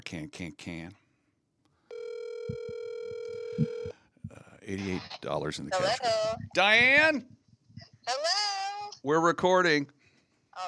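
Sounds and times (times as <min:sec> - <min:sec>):
speech: 0:00.1 - 0:01.0, 0:04.7 - 0:07.4, 0:08.1 - 0:10.0
telephone dial tone while placing a call: 0:01.9 - 0:04.0.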